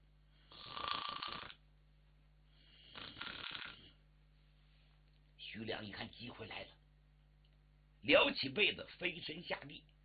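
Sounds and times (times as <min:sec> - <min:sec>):
man asleep slumped in a chair snoring: 0:00.5 - 0:01.6, 0:02.7 - 0:04.0
speech: 0:05.5 - 0:06.8, 0:08.0 - 0:09.9.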